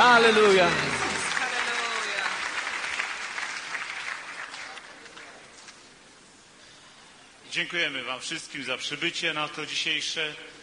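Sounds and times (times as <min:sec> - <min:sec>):
congregation applauding at a church service: 0:00.0 - 0:05.5
speech: 0:00.2 - 0:00.9, 0:07.6 - 0:10.6.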